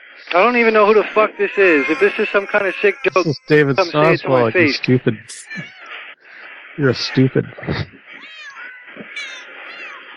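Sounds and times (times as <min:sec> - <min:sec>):
speech: 0:00.2 - 0:05.8, 0:06.8 - 0:08.0
laughter: 0:00.3 - 0:05.2, 0:06.8 - 0:07.9
cats meowing: 0:00.4 - 0:06.0, 0:06.9 - 0:10.1.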